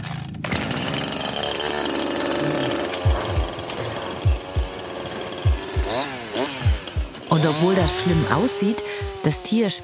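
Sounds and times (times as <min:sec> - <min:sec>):
chainsaw cutting through a rhino horn: 0:00.0 - 0:09.8
deep thumps of chainsaw biting into rhino horn: 0:03.0 - 0:04.8, 0:05.4 - 0:05.9, 0:06.6 - 0:07.2
speech: 0:07.4 - 0:09.8.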